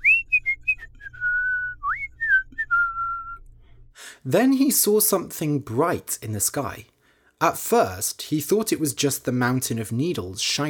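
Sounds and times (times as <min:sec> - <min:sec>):
person whistling a tune: 0:00.0 - 0:03.4
speech: 0:04.2 - 0:10.6.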